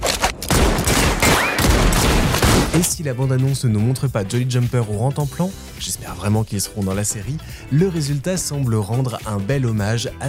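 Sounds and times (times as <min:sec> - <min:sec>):
gunfire in a Western action scene: 0:00.4 - 0:02.9
speech: 0:02.8 - 0:10.2.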